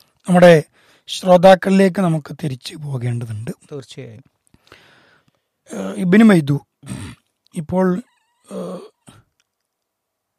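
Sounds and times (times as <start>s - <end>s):
speech: 0.2s - 4.8s, 5.7s - 8.9s
person coughing: 6.8s - 7.2s.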